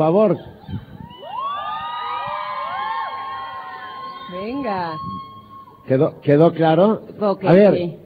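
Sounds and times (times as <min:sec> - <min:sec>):
speech: 0:00.0 - 0:00.9, 0:04.3 - 0:08.0
crowd of young students shouting and cheering: 0:01.1 - 0:05.9.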